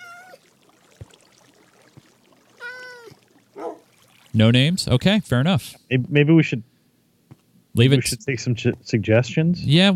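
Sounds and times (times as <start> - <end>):
cat meowing: 0.0 - 0.4, 2.6 - 3.2
speech: 4.4 - 6.7, 7.8 - 9.9.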